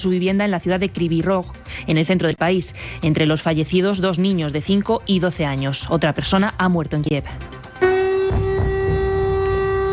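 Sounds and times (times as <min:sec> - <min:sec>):
speech: 0:00.0 - 0:07.6
wartime air raid siren wailing over the Ukrainian capital: 0:07.8 - 0:09.9.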